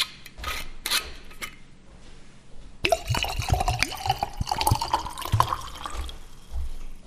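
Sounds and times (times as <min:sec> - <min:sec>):
whisky poured from a bottle into a wine glass: 0:02.8 - 0:06.5.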